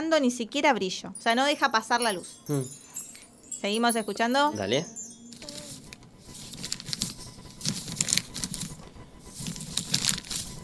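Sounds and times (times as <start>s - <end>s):
speech: 0.1s - 2.8s, 3.6s - 5.0s
paper being crumpled into a ball: 5.3s - 10.6s.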